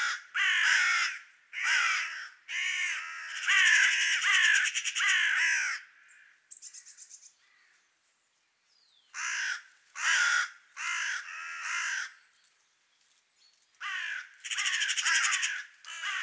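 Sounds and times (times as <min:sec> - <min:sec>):
Carrion crow Corvus corone giving harsh caws: 0:00.0 - 0:06.4, 0:09.2 - 0:12.2, 0:13.8 - 0:16.2.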